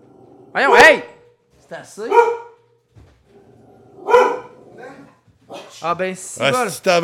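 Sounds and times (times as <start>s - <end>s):
speech: 0.5s - 1.1s, 1.7s - 2.4s, 5.5s - 7.0s
small dog yapping with sharp high barks: 2.0s - 2.6s, 4.0s - 5.7s.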